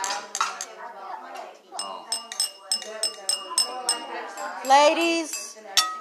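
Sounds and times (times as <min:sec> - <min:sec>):
glasses clinking in a toast: 0:01.8 - 0:05.9
speech: 0:04.7 - 0:05.4.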